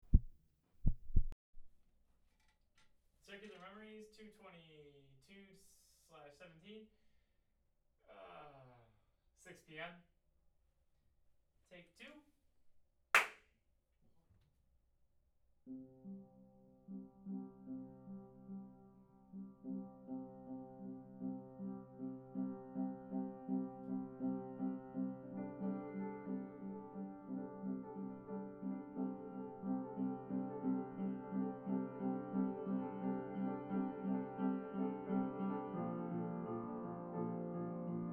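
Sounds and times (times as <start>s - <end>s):
piano accompaniment: 15.7s - 38.1s.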